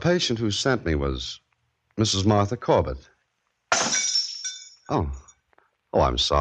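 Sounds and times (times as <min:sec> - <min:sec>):
speech: 0:00.0 - 0:01.4, 0:02.0 - 0:03.1, 0:04.9 - 0:05.2, 0:05.9 - 0:06.3
drinking glass dropped and shattering on the floor: 0:03.7 - 0:04.9
tinkle of glass shards: 0:03.7 - 0:05.4.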